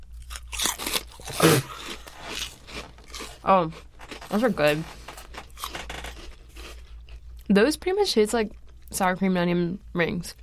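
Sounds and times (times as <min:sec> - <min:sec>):
crunching and chewing of a shrimp-flavored snack: 0:00.0 - 0:07.5
speech: 0:03.5 - 0:05.0, 0:07.5 - 0:10.4.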